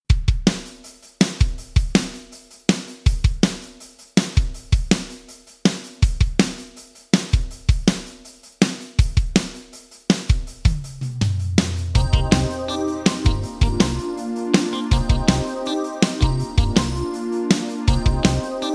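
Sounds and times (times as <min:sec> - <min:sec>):
dry drums: 0:00.1 - 0:18.7.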